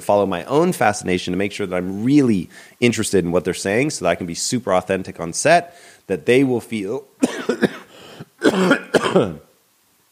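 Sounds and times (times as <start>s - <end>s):
speech: 0.0s - 7.6s, 8.6s - 9.4s
man coughing with sharp hacks and raspy throaty coughs: 7.2s - 9.5s.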